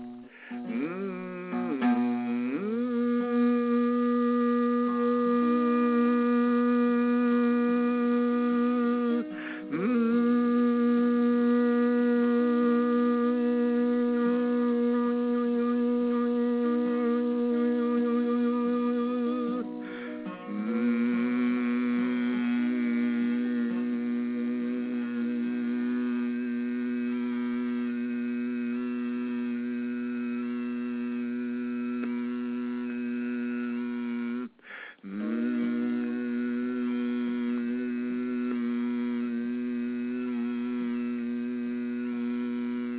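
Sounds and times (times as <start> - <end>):
voice humming a long steady note on the pitch B: 0.0 - 42.9.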